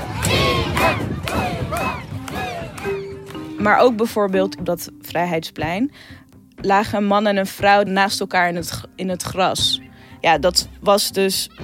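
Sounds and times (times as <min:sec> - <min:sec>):
loud crowd of young voices chanting a slogan in unison: 0:00.0 - 0:03.1
excited shouting: 0:00.0 - 0:03.3
speech: 0:03.6 - 0:11.6.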